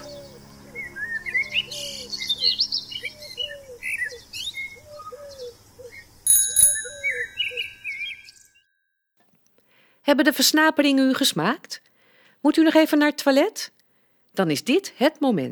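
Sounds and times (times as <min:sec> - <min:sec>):
birds chirping and whistling: 0:00.0 - 0:06.2, 0:06.8 - 0:08.6
bright ringing bell-like tone: 0:06.3 - 0:08.6
speech: 0:10.1 - 0:11.8, 0:12.4 - 0:13.8, 0:14.4 - 0:15.4.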